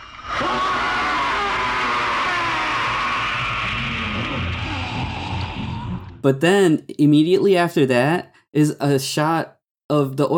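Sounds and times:
harsh distorted monster scream from a film: 0.0 - 6.2
speech: 6.2 - 10.3.

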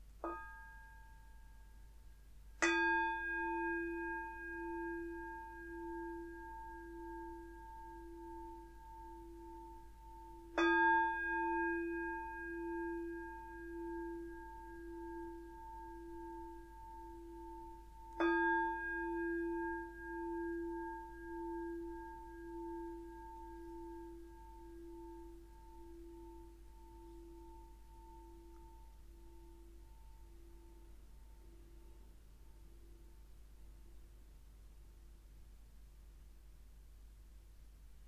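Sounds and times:
resonant meditation bell struck: 2.6 - 32.8.

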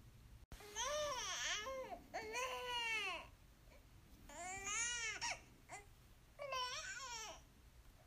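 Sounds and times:
hungry baby crying with neh sound: 0.6 - 3.3, 4.3 - 7.4.

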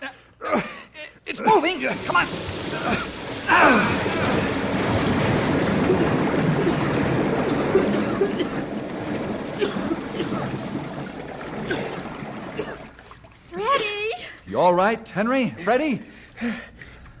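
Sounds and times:
speech: 1.3 - 4.5, 8.2 - 8.8, 14.6 - 16.7
water rushing out through opened door: 1.4 - 14.0.

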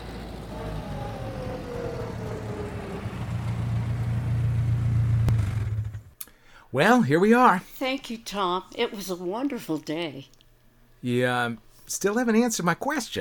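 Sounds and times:
car engine rumbling: 0.0 - 6.2
speech: 6.7 - 10.4, 11.0 - 13.1.

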